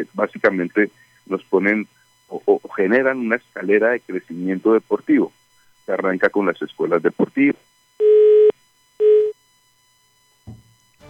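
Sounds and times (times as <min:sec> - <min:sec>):
speech: 0:00.0 - 0:08.1
telephone busy tone beeps after a dropped call: 0:08.0 - 0:09.5.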